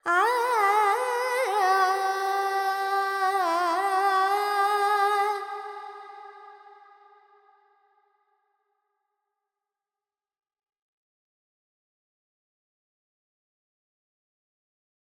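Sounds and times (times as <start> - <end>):
female Carnatic alap vocal in raga Panthuvarali: 0.0 - 6.4.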